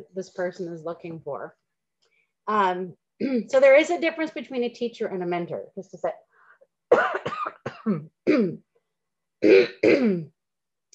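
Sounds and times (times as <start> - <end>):
speech: 0.0 - 1.6, 2.4 - 6.3, 6.9 - 8.7, 9.4 - 10.4
louder harsh coughs: 6.9 - 8.6, 9.4 - 10.3
person clearing throat: 6.9 - 8.6, 9.4 - 10.4.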